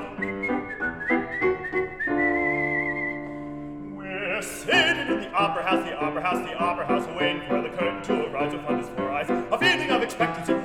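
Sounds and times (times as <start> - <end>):
person whistling a tune: 0.0 - 3.7
speech: 5.4 - 10.5.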